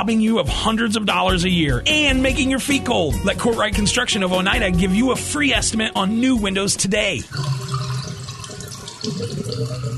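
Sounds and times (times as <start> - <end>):
speech: 0.0 - 7.8, 9.0 - 9.9
water gurgling and rushing through house drains: 7.2 - 9.9.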